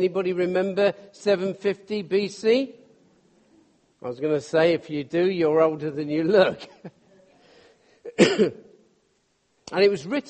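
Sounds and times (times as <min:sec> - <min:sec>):
speech: 0:00.0 - 0:02.8, 0:04.0 - 0:07.0, 0:08.2 - 0:08.6, 0:09.7 - 0:10.2
person coughing: 0:08.0 - 0:08.7.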